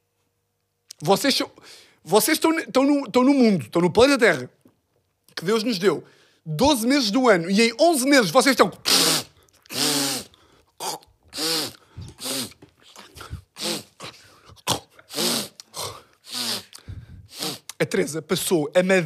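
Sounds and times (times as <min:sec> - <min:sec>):
speech: 0:01.0 - 0:04.6, 0:05.4 - 0:09.0, 0:18.0 - 0:19.0
voice imitating a woman's nasal sniffling with breathy snorts and gasps: 0:08.8 - 0:17.8.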